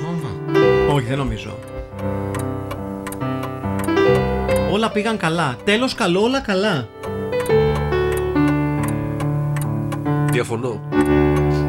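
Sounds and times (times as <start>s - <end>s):
clock ticking: 0.5s - 11.6s
speech: 1.0s - 2.7s, 4.1s - 7.6s, 10.3s - 11.5s.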